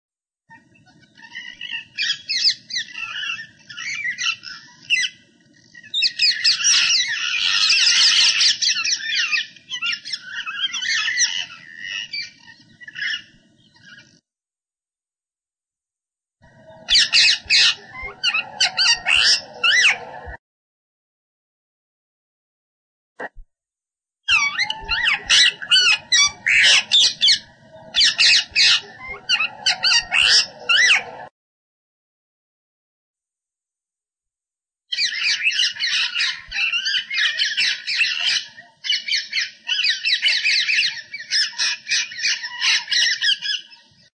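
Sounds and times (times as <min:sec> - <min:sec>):
rose-ringed parakeet: 0:00.5 - 0:14.2, 0:16.4 - 0:20.4, 0:24.3 - 0:31.3, 0:34.9 - 0:43.7.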